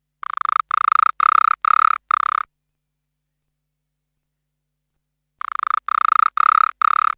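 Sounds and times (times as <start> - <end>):
Litoria lesueri Lesueur's frog or stony creek frog calling: 0.2 - 2.5, 5.4 - 7.1.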